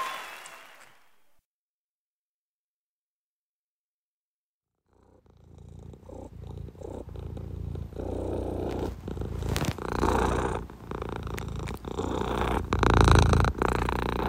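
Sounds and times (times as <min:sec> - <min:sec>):
cat purring: 0:04.8 - 0:14.2.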